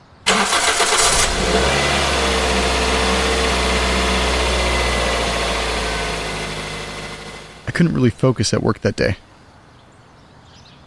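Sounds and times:
car engine cranking, starting and rumbling: 0.2 - 8.3
speech: 7.8 - 9.3.

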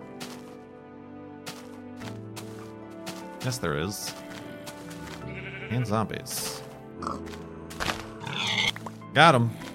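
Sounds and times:
speech: 3.4 - 4.2, 5.7 - 7.5, 9.2 - 9.7
pig grunting and oinking: 7.0 - 7.4, 8.2 - 8.9
pig snuffling squeal: 8.2 - 8.8.

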